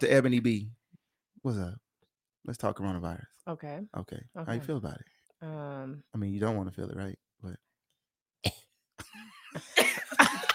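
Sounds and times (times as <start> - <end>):
speech: 0.0 - 0.8, 1.4 - 1.8, 2.4 - 7.6, 9.5 - 9.8
person coughing: 8.4 - 8.7, 9.6 - 10.5
laughter: 9.0 - 10.5.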